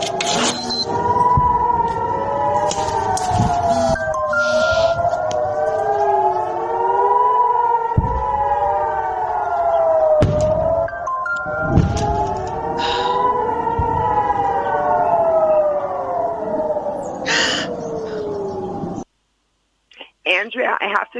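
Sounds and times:
warning siren wailing at night at a home: 0.0 - 19.1
faint beeps: 0.5 - 0.9, 3.7 - 5.0.

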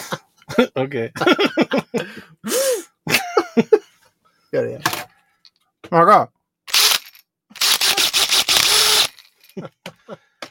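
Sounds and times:
speech: 0.8 - 2.8, 5.9 - 6.3
power drill whirring: 6.7 - 9.4.

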